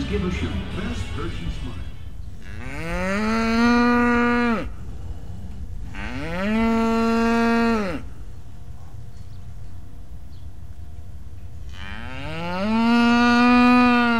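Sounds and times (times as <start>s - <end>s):
speech: 0.1s - 1.9s
agitated dairy cow mooing: 2.4s - 4.9s, 5.8s - 8.2s, 11.7s - 14.1s.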